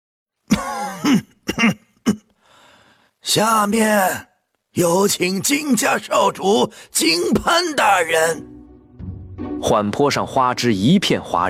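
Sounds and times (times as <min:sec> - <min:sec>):
person acting out rasping coughs: 0:00.5 - 0:02.3
person acting out throat-clearing: 0:00.5 - 0:02.4
speech: 0:03.3 - 0:08.5, 0:09.6 - 0:11.4.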